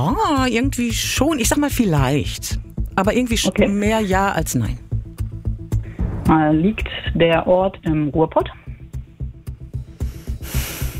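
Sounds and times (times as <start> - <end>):
speech: 0.0 - 4.9, 6.3 - 8.6
heavy rhythmic breathing with forceful huffs and snorting exhales: 5.6 - 7.2, 8.6 - 10.9.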